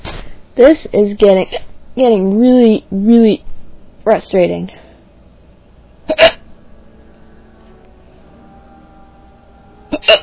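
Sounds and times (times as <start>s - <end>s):
speech: 0.6s - 4.8s, 6.1s - 6.3s
person hiccuping: 6.1s - 6.4s, 9.9s - 10.2s.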